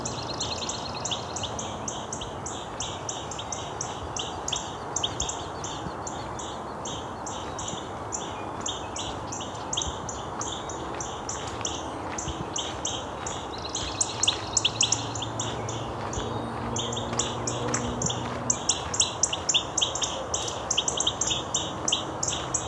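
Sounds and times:
red-winged blackbirds calling: 0.0s - 22.6s
steady outdoor rushing noise: 9.5s - 20.2s.

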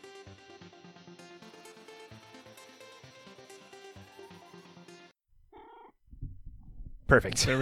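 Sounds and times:
cat meowing: 5.4s - 6.3s
speech: 7.1s - 7.5s.

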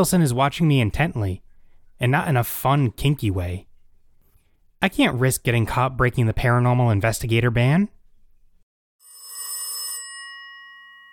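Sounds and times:
speech: 0.0s - 1.4s, 2.0s - 3.7s, 4.8s - 8.0s
telephone bell ringing: 9.0s - 11.1s.

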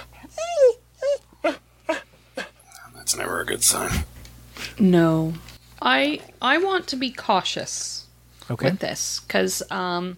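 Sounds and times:
dog whimpering: 0.0s - 2.6s
speech: 3.4s - 4.1s, 4.8s - 10.1s.

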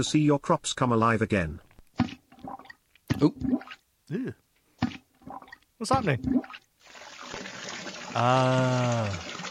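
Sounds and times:
speech: 0.0s - 1.7s, 3.2s - 4.4s, 5.3s - 6.6s, 8.2s - 9.3s
toilet flushing: 6.8s - 9.4s.

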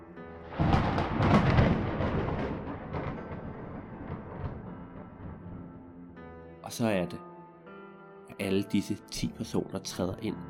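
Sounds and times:
thunder crack and rumble: 0.4s - 6.4s
speech: 6.7s - 7.3s, 8.4s - 10.4s.

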